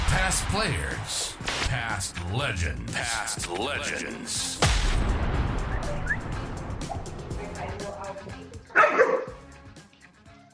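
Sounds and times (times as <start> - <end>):
speech: 0.2 - 6.3
dog barking: 8.7 - 9.4.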